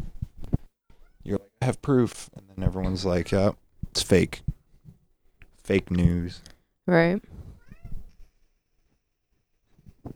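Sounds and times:
speech: 1.2s - 4.5s, 5.6s - 7.4s
domestic cat meowing: 7.6s - 8.3s.

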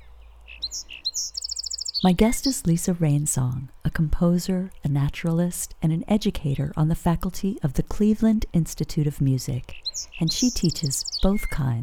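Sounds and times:
bird singing a bright high song: 0.0s - 3.0s, 9.6s - 11.8s
low hum: 0.0s - 11.8s
speech: 0.7s - 1.4s, 2.0s - 11.8s.

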